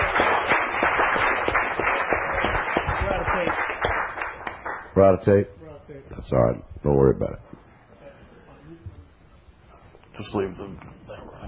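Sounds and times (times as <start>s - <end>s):
crowd clapping: 0.0s - 5.0s
speech: 5.0s - 5.6s, 6.2s - 7.5s, 10.2s - 11.2s.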